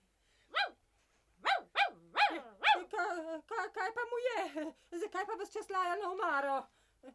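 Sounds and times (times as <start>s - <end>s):
dog barking: 0.5s - 0.8s, 1.4s - 2.9s
speech: 3.6s - 7.1s.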